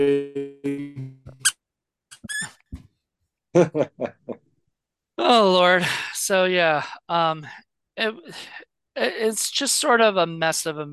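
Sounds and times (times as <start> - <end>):
speech: 0.0 - 0.8, 3.6 - 4.0, 5.3 - 10.9
squeaky rubber toy monkey being squeezed: 2.1 - 2.6
laughter: 3.6 - 4.4.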